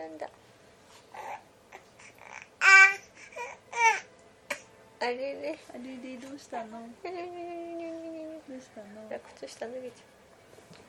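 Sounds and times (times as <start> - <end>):
baby babbling and squealing: 1.2 - 4.6
speech: 5.1 - 7.6, 8.5 - 10.1.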